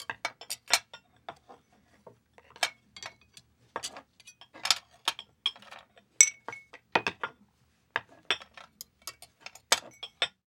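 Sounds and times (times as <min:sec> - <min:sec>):
household silverware moving: 0:00.0 - 0:01.0, 0:02.5 - 0:07.2, 0:08.3 - 0:10.4.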